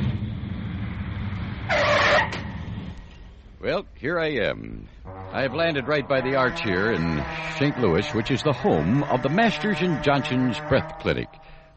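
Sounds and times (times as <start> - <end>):
low vehicle engine rumble: 0.0 - 11.7
vehicle brakes screeching as the vehicle skids: 1.6 - 3.4, 5.1 - 11.6
speech: 3.6 - 11.5.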